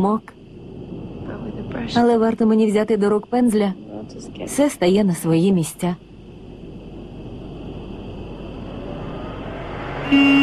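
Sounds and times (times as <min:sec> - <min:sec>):
speech: 0:00.0 - 0:00.4, 0:01.7 - 0:06.1
car driving up with road rumble: 0:06.7 - 0:10.4
steady horn tone: 0:09.6 - 0:10.4.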